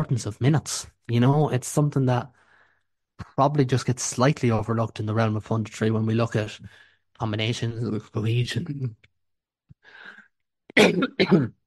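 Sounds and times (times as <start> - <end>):
speech: 0.0 - 2.4, 3.3 - 9.1, 10.8 - 11.6
person clearing throat: 10.7 - 11.6
person coughing: 10.7 - 11.6.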